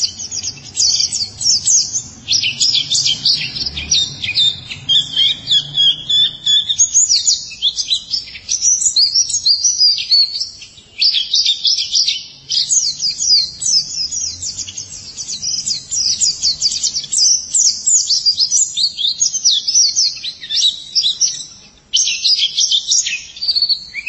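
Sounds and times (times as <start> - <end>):
white-eye song with rapid high chips and slurred whistles: 0.0 - 24.0.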